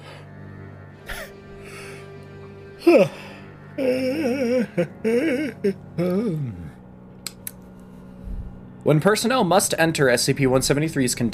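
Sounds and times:
steady low hum: 0.0s - 11.3s
speech: 2.8s - 6.6s, 8.8s - 11.3s
person yawning: 2.8s - 6.8s
laughter: 4.0s - 5.8s.

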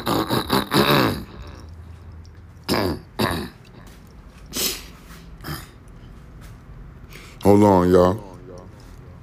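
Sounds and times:
person coughing harshly: 0.0s - 1.6s, 2.6s - 3.9s
person clearing throat: 0.0s - 1.7s, 2.6s - 3.9s, 4.5s - 5.8s
speech: 7.5s - 8.3s.

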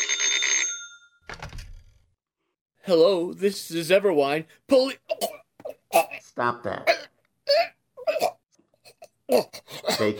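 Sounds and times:
telephone bell ringing: 0.0s - 1.2s
speech: 2.8s - 5.4s, 6.0s - 7.7s, 9.3s - 10.1s.

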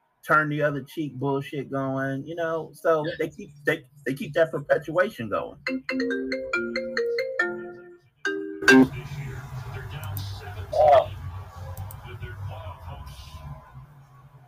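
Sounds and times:
speech: 0.2s - 6.8s, 8.7s - 9.1s
phone ringtone during call: 5.6s - 9.0s.

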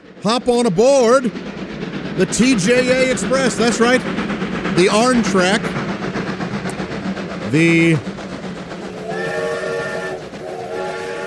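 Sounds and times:
steady rumble and clatter of a rolling steam-powered monorail: 0.0s - 11.2s
speech: 0.2s - 1.5s, 2.2s - 5.8s, 7.5s - 8.1s
steam-powered monorail whistle blast: 9.0s - 11.2s.

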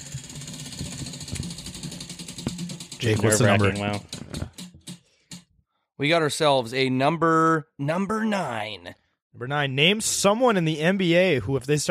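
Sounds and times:
numbered game wheel spinning: 0.0s - 5.0s
speech: 3.0s - 4.4s, 6.0s - 11.8s.

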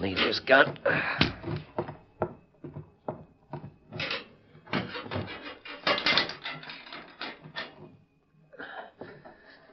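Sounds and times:
speech: 0.0s - 1.6s
heavy metal jail cell door lock clanking and ratcheting: 3.9s - 7.9s.

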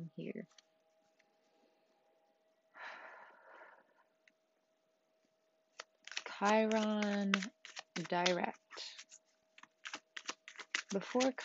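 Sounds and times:
Rider-Waite tarot deck being shuffled: 5.7s - 11.4s
speech: 6.4s - 9.0s, 10.9s - 11.4s.

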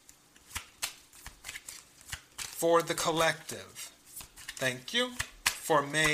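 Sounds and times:
playing cards being shuffled for a card reading: 0.0s - 6.1s
speech: 2.6s - 3.9s, 4.6s - 6.1s.

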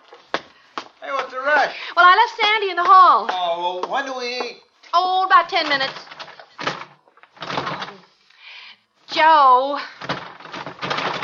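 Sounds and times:
speech: 1.3s - 6.0s, 9.2s - 9.9s
door closing shut: 5.6s - 8.0s, 10.0s - 11.2s.

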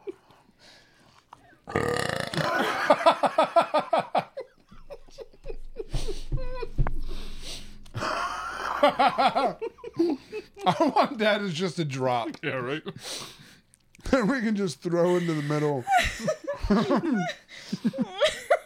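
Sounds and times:
speech: 1.7s - 1.9s, 9.0s - 9.8s, 10.6s - 13.3s, 14.2s - 18.4s
loud croaking burp: 1.7s - 2.6s
laughter: 2.4s - 6.8s, 8.0s - 11.6s, 15.0s - 18.6s.

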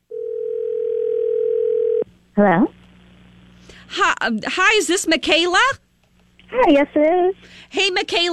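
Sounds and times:
steady telephone tone: 0.1s - 2.0s
speech: 2.4s - 2.8s, 3.9s - 5.8s, 6.5s - 8.3s.

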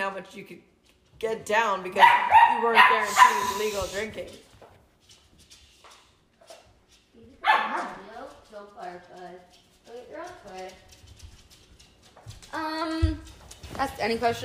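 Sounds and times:
speech: 0.1s - 4.5s, 12.5s - 14.4s
dog barking: 2.0s - 3.9s, 7.4s - 8.1s
dog yipping and whining: 2.1s - 3.8s.

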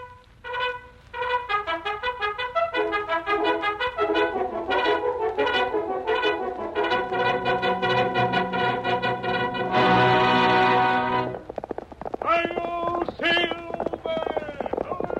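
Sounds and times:
loud brassy old-time radio theme music, an operatic overture: 0.0s - 11.5s
galloping horse hooves: 0.4s - 15.1s.

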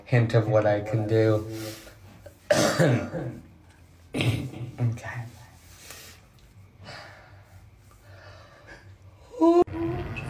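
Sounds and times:
speech: 0.1s - 1.8s, 2.5s - 3.5s, 4.1s - 5.4s, 9.4s - 9.7s
person clearing throat: 2.5s - 3.4s, 4.1s - 4.8s.

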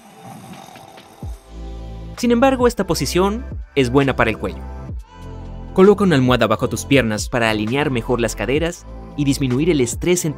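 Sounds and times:
person's loud deep rumbling snore: 0.0s - 2.1s
breathy inhale of a snoring person: 0.0s - 2.2s
speech: 2.2s - 4.8s, 5.8s - 10.3s.

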